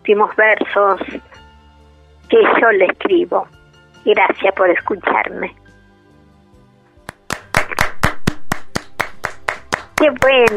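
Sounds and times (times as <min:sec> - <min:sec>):
speech: 0:00.0 - 0:01.3, 0:02.3 - 0:05.6, 0:10.0 - 0:10.5
applause in a studio: 0:07.0 - 0:10.5.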